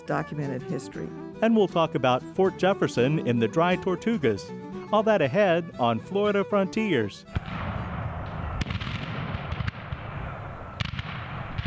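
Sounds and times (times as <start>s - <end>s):
speech: 0.1s - 7.4s
heavy booms of cannon fire in a battle in a North Florida pine forest: 7.3s - 11.6s.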